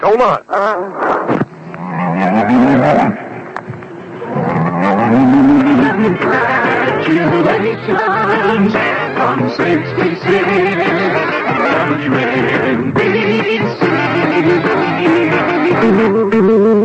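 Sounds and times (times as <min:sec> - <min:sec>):
speech: 0:00.0 - 0:01.5, 0:02.1 - 0:03.3, 0:05.1 - 0:16.8
cow mooing: 0:01.6 - 0:03.2, 0:04.2 - 0:05.6.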